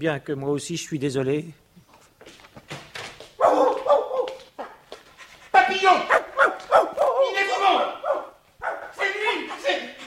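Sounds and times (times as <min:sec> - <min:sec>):
speech: 0:00.0 - 0:01.6
dog barking and whimpering excitedly: 0:03.4 - 0:04.8, 0:05.6 - 0:09.0.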